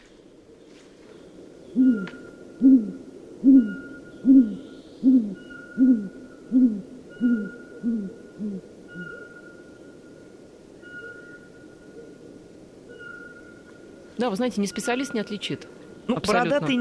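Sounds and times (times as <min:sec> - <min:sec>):
great grey owl hooting: 0:01.7 - 0:13.8
speech: 0:14.3 - 0:16.7.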